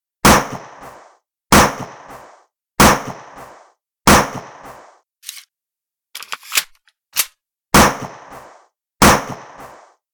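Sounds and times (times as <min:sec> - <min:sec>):
gunshots: 0:00.2 - 0:00.9, 0:01.5 - 0:02.1, 0:02.8 - 0:03.4, 0:04.1 - 0:04.8, 0:07.7 - 0:09.9.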